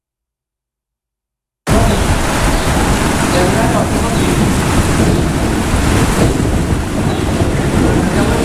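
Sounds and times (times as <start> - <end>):
heavy rain during a thunderstorm in Galicia: 1.7 - 8.4
thunder rumbling during intense lightning over Galicia: 1.7 - 8.4.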